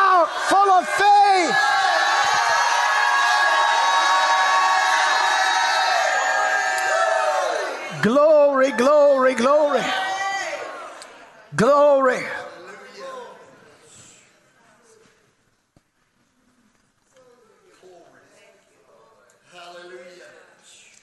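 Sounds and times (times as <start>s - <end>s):
large crowd shouting and cheering: 0.0s - 12.4s
speech: 11.6s - 12.4s.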